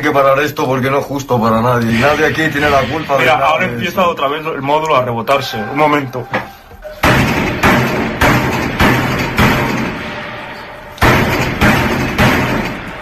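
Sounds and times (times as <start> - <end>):
speech: 0.0 - 7.0
heavy metal cell doors being banged by prisoners: 1.7 - 4.7, 6.2 - 13.0.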